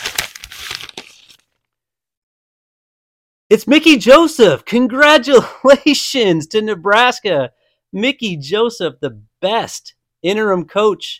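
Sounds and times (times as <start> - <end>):
paper envelope crinkling and tearing open: 0.0 - 1.6
speech: 3.5 - 11.1.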